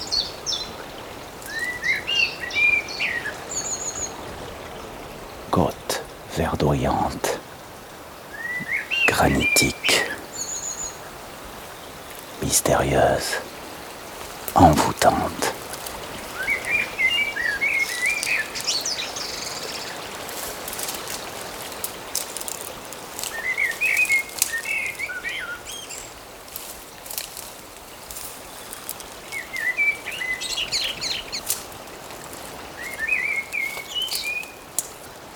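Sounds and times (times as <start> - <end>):
birds singing: 0.0 - 7.5, 8.1 - 13.7, 14.5 - 20.3, 23.2 - 26.2, 28.4 - 31.6, 32.6 - 34.6
steady soft water or rain-like noise: 0.0 - 35.3
speech: 6.4 - 7.4, 9.2 - 9.8, 12.5 - 13.5, 14.6 - 15.5.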